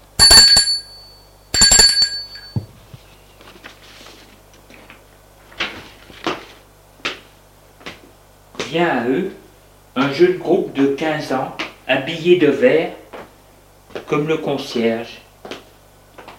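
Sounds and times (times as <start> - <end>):
bell ringing at a hotel reception desk: 0.2 - 2.7
speech: 8.7 - 9.4, 10.0 - 13.0, 14.1 - 15.2.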